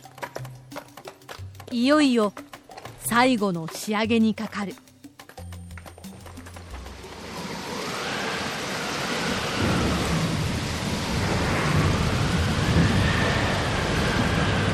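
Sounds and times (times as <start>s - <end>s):
speech: 1.7s - 2.5s, 3.1s - 4.8s
heavy rain pouring: 6.6s - 14.7s
deep thunder rumble: 6.8s - 14.7s.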